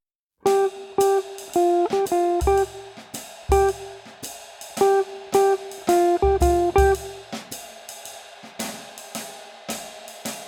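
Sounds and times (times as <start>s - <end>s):
guitar play-along with swing phrasing: 0.5s - 4.0s, 4.8s - 7.2s.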